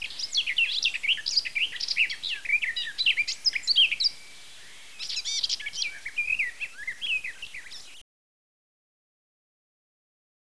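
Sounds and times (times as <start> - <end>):
bird calls of thin whistled chirps: 0.0 - 8.0.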